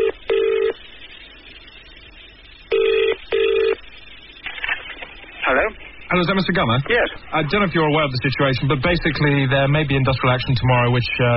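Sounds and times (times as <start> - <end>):
telephone ringing tone heard over the line: 0.0 - 0.8, 2.7 - 3.8
speech: 6.1 - 11.3.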